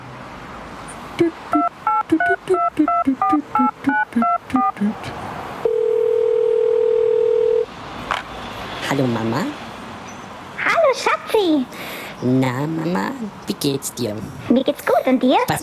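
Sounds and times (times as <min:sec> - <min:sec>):
speech: 0:01.2 - 0:04.0, 0:09.0 - 0:09.6, 0:11.0 - 0:15.6
steady loud telephone tone: 0:01.2 - 0:04.8, 0:05.6 - 0:07.7
touch-tone keypad beeps dialing a phone number in a phone booth: 0:01.2 - 0:04.8.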